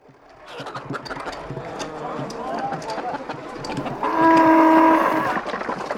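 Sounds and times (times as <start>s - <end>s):
hooves clopping: 0.0s - 5.9s
busy murmur of voices: 1.3s - 5.6s
cow mooing: 3.6s - 5.4s.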